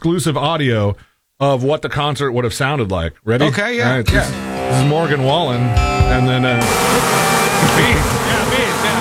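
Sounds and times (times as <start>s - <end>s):
speech: 0.0s - 8.6s
swarm of bees buzzing: 4.0s - 8.9s.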